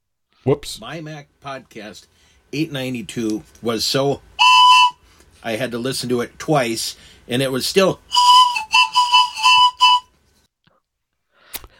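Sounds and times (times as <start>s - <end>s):
speech: 0.4s - 4.3s, 5.4s - 8.2s
whistling in short bright high notes: 4.4s - 5.0s, 8.1s - 10.1s.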